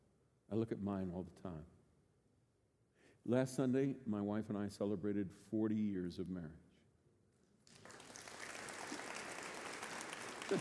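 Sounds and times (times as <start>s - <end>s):
speech: 0.5s - 1.8s, 3.2s - 6.6s
audience applause: 7.7s - 10.5s.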